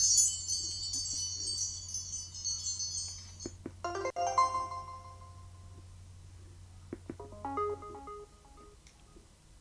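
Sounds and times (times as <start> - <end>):
phone alarm tone of little tinkling bells: 0.0 - 5.5
steady low hum: 0.0 - 9.6.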